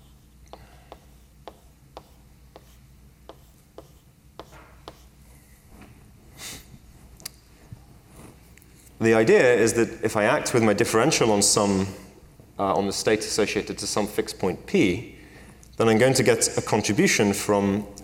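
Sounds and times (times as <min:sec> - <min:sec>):
faint writing of mathematical notation, taps and strokes: 0:00.0 - 0:05.1
low hum: 0:00.0 - 0:18.0
speech: 0:09.0 - 0:15.2, 0:15.8 - 0:18.0.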